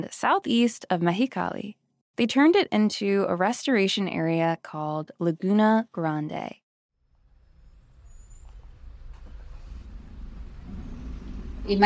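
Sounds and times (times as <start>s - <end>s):
speech: 0.0s - 6.6s, 11.7s - 11.8s
low rumbling city traffic in Mexicali: 7.2s - 11.8s
car engines droning: 7.6s - 11.8s.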